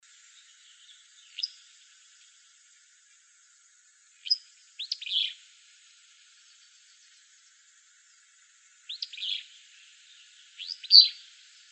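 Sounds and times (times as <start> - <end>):
willow flycatcher calling in Arizona: 0.3 - 2.6, 4.2 - 7.3, 8.1 - 11.7.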